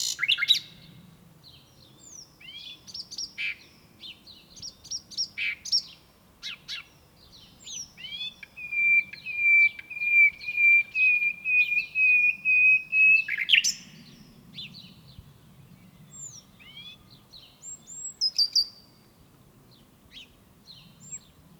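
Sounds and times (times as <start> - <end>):
Common nightingale song: 0.0 - 21.5.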